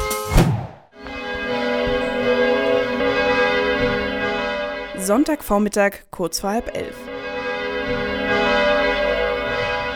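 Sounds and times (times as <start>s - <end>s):
church bells ringing for Sunday mass: 1.0s - 5.4s, 6.8s - 9.9s
speech: 5.1s - 7.0s.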